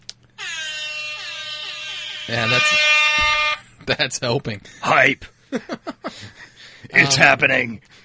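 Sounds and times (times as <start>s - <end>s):
air horn sound effect played from a phone app: 0.4s - 3.6s
speech: 2.3s - 2.9s, 3.9s - 8.0s.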